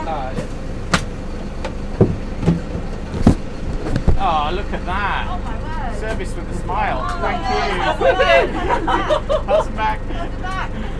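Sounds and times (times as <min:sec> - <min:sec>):
moving bus engine rumble: 0:00.0 - 0:10.9
rattles and clunks inside a moving bus: 0:00.3 - 0:06.4
laughter: 0:04.2 - 0:05.5, 0:06.6 - 0:10.9
speech: 0:06.1 - 0:10.9.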